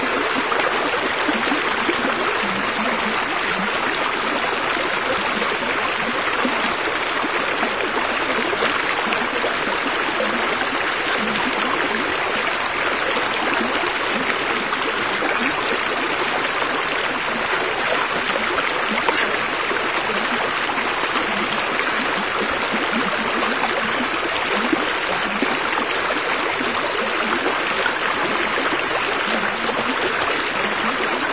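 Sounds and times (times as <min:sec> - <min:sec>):
river flowing in a dark alley: 0:00.0 - 0:31.3.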